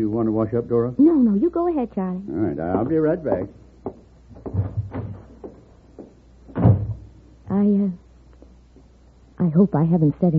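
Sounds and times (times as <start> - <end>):
speech: 0.0 - 4.6, 7.6 - 8.0, 9.4 - 10.3
soft knocks and shuffles: 3.3 - 7.0
kitchen door creaking open on a squeaky hinge and thumping shut: 4.3 - 7.2.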